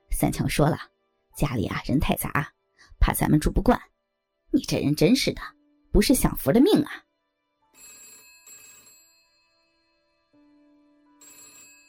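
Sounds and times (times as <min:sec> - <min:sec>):
speech: 0:00.2 - 0:03.9, 0:04.5 - 0:07.0
telephone bell ringing: 0:07.6 - 0:11.8.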